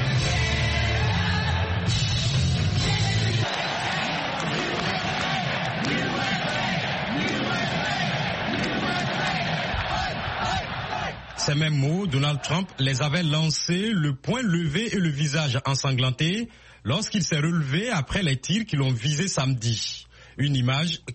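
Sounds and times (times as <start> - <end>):
huge indoor crowd of convention delegates cheering: 0.0 - 13.6
convention delegates yelling: 3.0 - 13.0
speech: 11.5 - 21.1.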